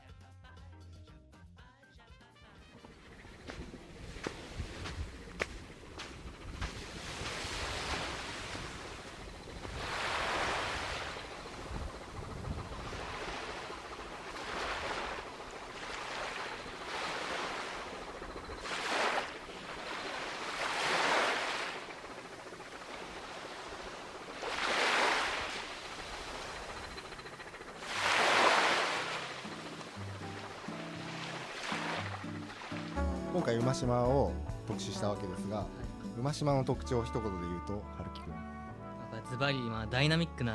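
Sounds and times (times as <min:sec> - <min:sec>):
small waves washing onto sandy beach on Umashima island, Japan: 0:03.8 - 0:33.0
speech: 0:33.4 - 0:38.5, 0:39.3 - 0:40.5.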